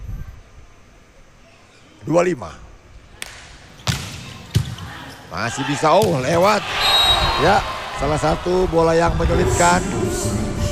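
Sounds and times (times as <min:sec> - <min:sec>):
speech: 0:02.0 - 0:02.6, 0:05.3 - 0:10.5
volleyball being spiked hard: 0:03.2 - 0:04.8.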